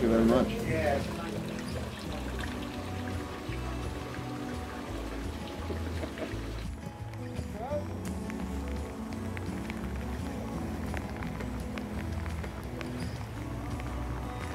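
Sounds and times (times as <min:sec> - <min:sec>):
heavy rain pouring: 0:00.0 - 0:14.5
speech: 0:00.2 - 0:01.2.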